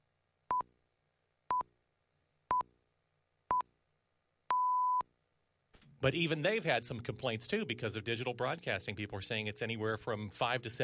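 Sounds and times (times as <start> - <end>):
radio time signal beeps at the top of the hour: 4.5 - 5.0
speech: 6.0 - 10.8.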